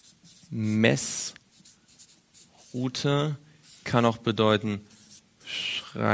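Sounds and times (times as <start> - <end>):
handwriting stroke, squeaky and scratching: 0.0 - 3.0, 3.6 - 4.0, 4.9 - 5.3
speech: 0.5 - 1.4, 2.8 - 4.9, 5.5 - 6.1.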